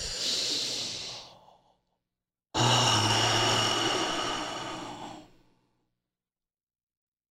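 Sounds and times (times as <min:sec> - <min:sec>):
deep breaths during a seated breathing exercise: 0:00.0 - 0:02.0, 0:02.6 - 0:05.6.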